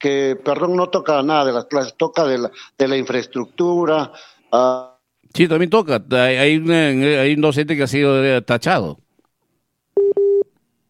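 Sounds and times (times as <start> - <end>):
speech: 0.0 - 9.0
telephone call-waiting tone beeps: 10.0 - 10.5.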